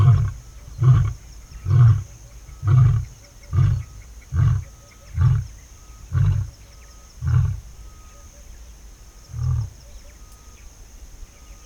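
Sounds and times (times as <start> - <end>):
male lion roaring at Kanderi swamp in Tsavo National Park: 0.0 - 5.5, 6.1 - 6.6, 7.2 - 7.8, 9.3 - 9.8
thin dawn chorus in the dry season at Kanderi swamp in Tsavo National Park: 0.0 - 11.6.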